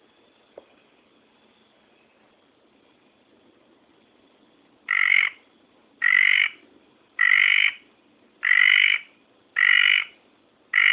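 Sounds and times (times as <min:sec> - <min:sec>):
red tree frog giving rasping buzzy calls: 0:04.9 - 0:05.4, 0:06.0 - 0:06.6, 0:07.2 - 0:10.9.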